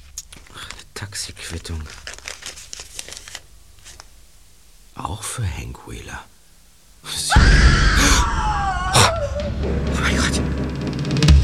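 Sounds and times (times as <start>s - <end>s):
speech: 1.0s - 2.1s, 5.0s - 6.3s, 7.0s - 8.4s, 9.2s - 10.6s
person screaming: 7.3s - 9.6s.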